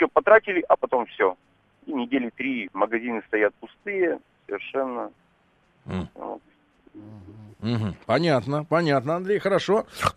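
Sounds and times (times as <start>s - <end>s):
speech: 0.0s - 5.2s, 5.8s - 10.1s
short rough pig-like grunts: 5.8s - 6.3s, 6.9s - 8.1s.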